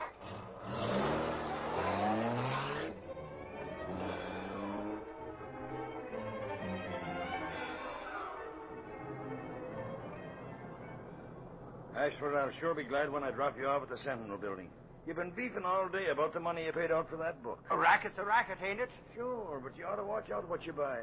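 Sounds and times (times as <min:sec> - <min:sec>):
car engine revving and roaring as vehicle accelerates: 0:00.0 - 0:11.9
speech: 0:12.0 - 0:21.0.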